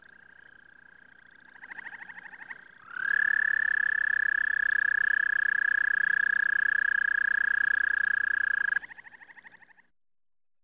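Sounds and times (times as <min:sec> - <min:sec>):
American toad trilling: 0:01.9 - 0:09.6.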